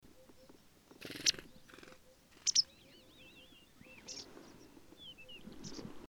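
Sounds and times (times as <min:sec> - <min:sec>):
white wagtail baicalensis calling at Telmen Nuur: 0:00.1 - 0:05.8.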